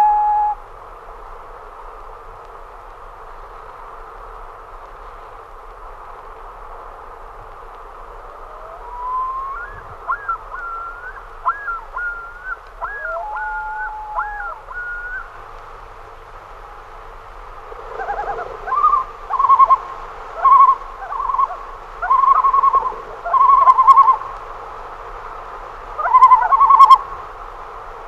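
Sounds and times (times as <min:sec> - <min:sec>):
common loon calling with whistles and tremolo: 0:00.0 - 0:00.6, 0:08.3 - 0:15.4, 0:18.0 - 0:24.4, 0:26.0 - 0:27.1.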